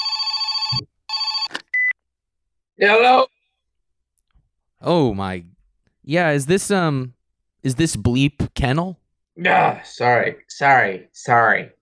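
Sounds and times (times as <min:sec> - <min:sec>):
telephone ringing on an outgoing call to a kennel: 0:00.0 - 0:01.9
speech: 0:02.8 - 0:03.3, 0:04.8 - 0:05.5, 0:06.1 - 0:11.8.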